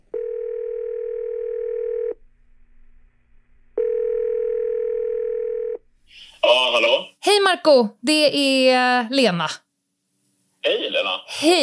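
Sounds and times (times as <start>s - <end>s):
telephone ringback tone: 0.1s - 2.2s, 3.8s - 5.8s
speech: 6.8s - 9.6s, 10.6s - 11.6s.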